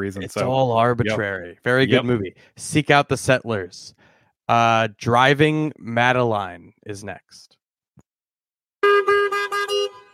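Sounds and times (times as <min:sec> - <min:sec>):
speech: 0:00.0 - 0:07.6
car horn honking: 0:08.8 - 0:10.1.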